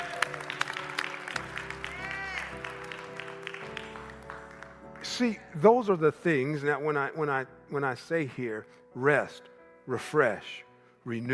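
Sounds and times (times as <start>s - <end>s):
audience clapping: 0.0s - 5.6s
speech: 5.2s - 11.3s.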